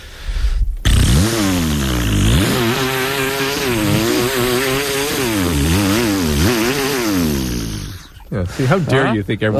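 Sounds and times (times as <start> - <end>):
person vocally imitating a revving chainsaw: 0.9 - 8.3
speech: 8.6 - 9.5.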